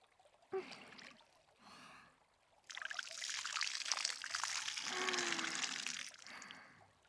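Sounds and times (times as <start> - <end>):
water poured over a body rinsing away soap suds: 2.6 - 6.8.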